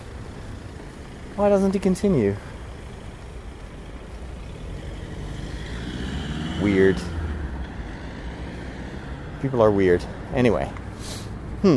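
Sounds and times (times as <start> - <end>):
car engine and road rumble: 0.0 - 11.7
speech: 1.4 - 2.5, 6.6 - 7.1, 9.4 - 11.7.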